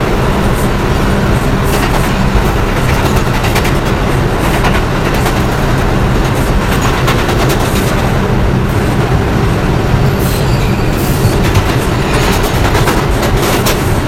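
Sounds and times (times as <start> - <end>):
R142 subway train running at Jerome Yard: 0.0 - 14.0.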